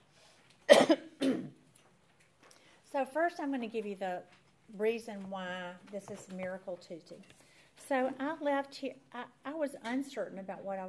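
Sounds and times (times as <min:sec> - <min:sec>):
person clearing throat: 0:00.7 - 0:01.6
speech: 0:02.9 - 0:10.8.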